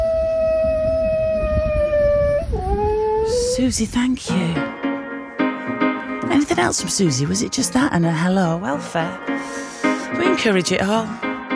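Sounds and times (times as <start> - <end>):
dog howling: 0.0 - 3.7
speech: 3.6 - 4.8, 6.3 - 11.3.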